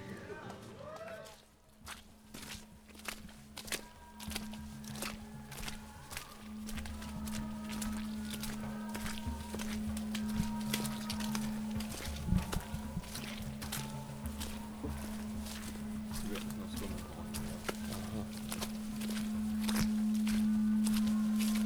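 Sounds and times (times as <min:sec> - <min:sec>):
crystal bowl chant: 0:03.7 - 0:21.6.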